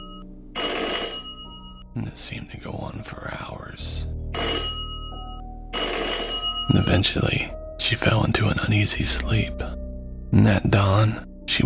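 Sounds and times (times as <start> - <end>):
doorbell ringing: 0.0 - 1.8, 4.4 - 7.2
speech: 2.0 - 4.6, 6.7 - 11.6.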